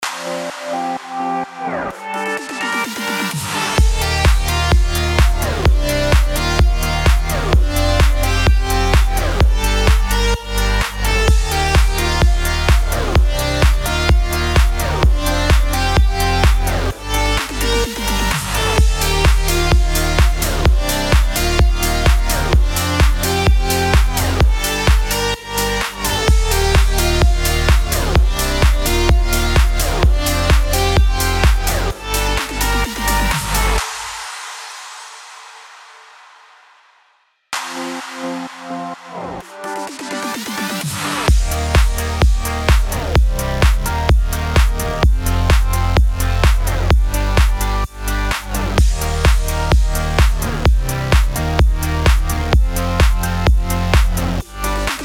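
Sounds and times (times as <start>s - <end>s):
electro music bed in D sharp minor: 0.0s - 35.6s, 37.6s - 55.0s.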